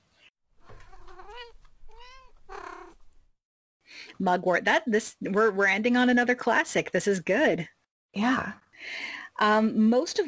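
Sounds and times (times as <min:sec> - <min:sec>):
cat meowing: 0:00.6 - 0:03.2
speech: 0:04.2 - 0:10.2.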